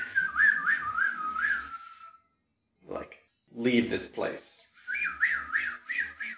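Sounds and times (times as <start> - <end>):
off-key whistling blown through the knuckles: 0.0 - 2.3, 4.7 - 6.3
speech: 3.6 - 4.6.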